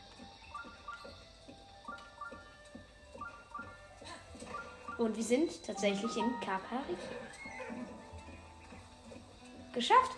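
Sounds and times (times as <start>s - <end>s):
video game horse hoofbeats: 0.0s - 10.1s
bright chiming video game music: 0.3s - 8.9s
speech: 5.0s - 7.5s, 9.8s - 10.1s
video game horse snorting: 6.8s - 9.3s.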